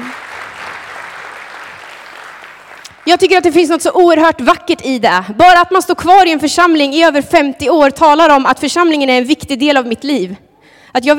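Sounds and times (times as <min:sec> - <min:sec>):
crowd of people applauding: 0:00.0 - 0:03.0
speech: 0:03.1 - 0:11.1.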